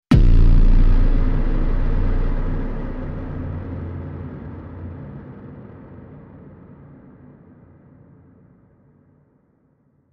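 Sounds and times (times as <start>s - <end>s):
cinematic sound effect: 0.1s - 5.1s.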